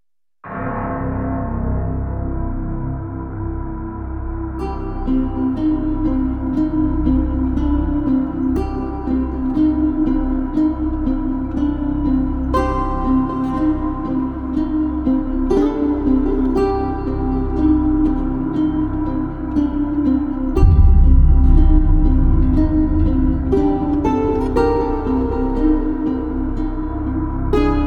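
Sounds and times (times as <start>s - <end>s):
ominous atmospheric electronic synth pads: 0.4s - 27.8s.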